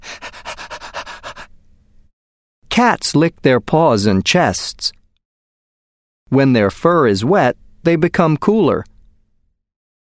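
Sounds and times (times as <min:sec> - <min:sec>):
dog panting: 0:00.0 - 0:01.5
speech: 0:02.8 - 0:05.0, 0:06.3 - 0:08.9.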